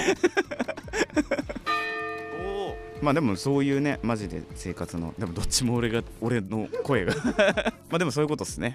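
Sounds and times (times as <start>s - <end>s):
laughter: 0.0s - 1.7s, 6.6s - 7.8s
speech: 0.1s - 0.4s, 3.0s - 8.7s
clear loud bell tone with long humming resonance: 1.6s - 5.4s
bell clanging: 1.6s - 6.6s.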